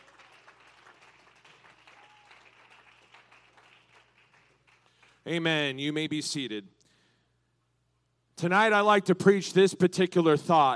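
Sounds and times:
audience clapping in sustained dense applause: 0:00.0 - 0:05.2
speech: 0:05.2 - 0:06.8, 0:08.4 - 0:10.7.

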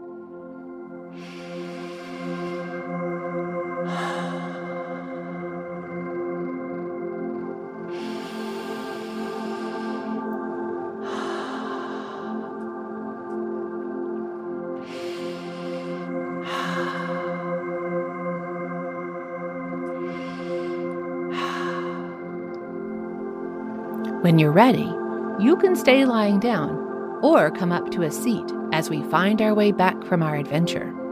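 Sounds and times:
slow deep breaths during a children's guided relaxation: 0:00.9 - 0:06.2, 0:07.2 - 0:23.9
speech: 0:24.3 - 0:31.0.

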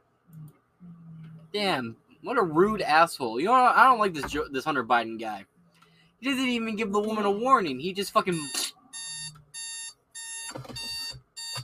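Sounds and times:
speech: 0:00.8 - 0:05.5, 0:06.2 - 0:08.8
alarm clock ringing with bright buzzy beeping: 0:08.3 - 0:11.6.

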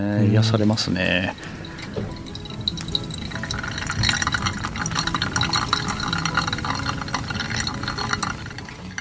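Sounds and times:
speech: 0:00.0 - 0:02.1
hot water poured by hand-drip over coffee grounds: 0:01.0 - 0:08.9.

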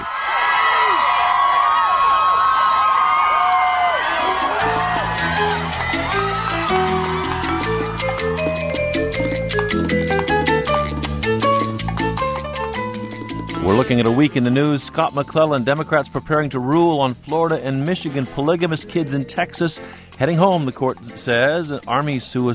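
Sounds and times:
crowd of fans screaming and whooping at premiere: 0:00.0 - 0:10.2
music with a steady bass beat: 0:04.6 - 0:14.0
speech: 0:13.7 - 0:22.5.

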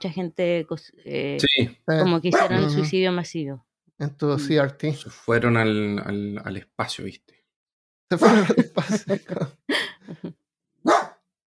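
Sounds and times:
speech: 0:00.0 - 0:07.4, 0:08.1 - 0:11.0
small dog barking: 0:02.3 - 0:02.9, 0:10.8 - 0:11.2
laughter: 0:08.1 - 0:10.3.

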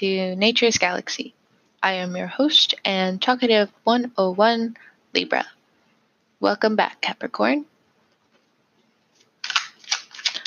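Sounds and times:
speech: 0:00.0 - 0:05.6, 0:06.4 - 0:07.7
new tarot card deck being shuffled: 0:09.1 - 0:10.4.

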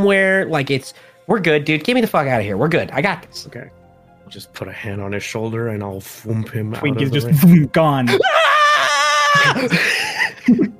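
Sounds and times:
speech: 0:00.0 - 0:08.4, 0:09.4 - 0:10.7
person screaming during a game: 0:08.1 - 0:09.8
laughter: 0:08.9 - 0:10.7.

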